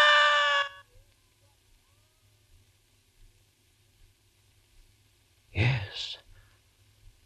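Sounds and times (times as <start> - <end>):
person acting out a high-pitched scream: 0.0 - 0.8.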